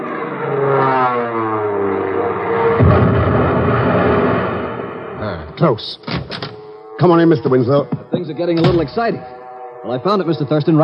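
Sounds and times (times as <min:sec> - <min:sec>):
warplane engine roar diving on a bomb run: 0:00.0 - 0:10.8
sharp blast: 0:02.7 - 0:05.4
speech: 0:05.6 - 0:06.2, 0:07.0 - 0:10.8.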